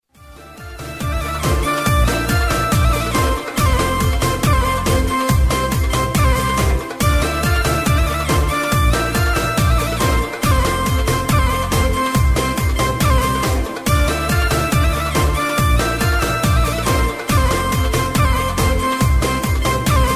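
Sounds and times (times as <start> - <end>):
classical flute: 0.2 - 20.1.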